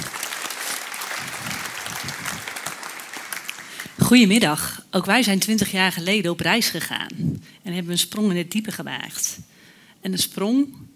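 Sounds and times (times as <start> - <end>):
audience clapping: 0.0 - 4.0
speech: 4.1 - 10.9.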